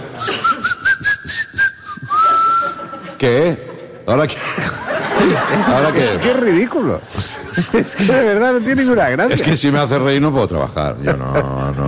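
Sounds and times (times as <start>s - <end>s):
laughter: 0.0s - 0.8s, 2.0s - 9.5s, 10.9s - 11.8s
whistling through the teeth: 0.2s - 3.0s
speech: 3.2s - 11.8s.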